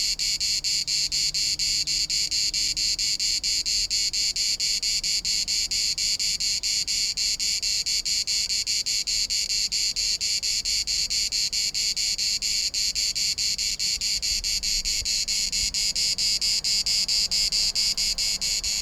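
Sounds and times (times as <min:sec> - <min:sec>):
Cicada orni cicada song: 0:00.0 - 0:18.7.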